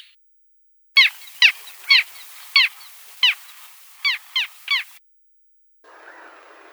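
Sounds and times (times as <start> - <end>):
faint background hiss: 1.0 - 5.0
little gull calls: 1.0 - 5.0.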